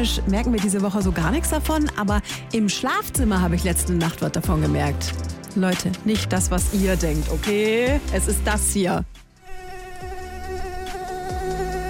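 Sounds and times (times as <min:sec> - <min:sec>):
speech: 0:00.0 - 0:09.2
mosquito buzzing: 0:09.4 - 0:11.8.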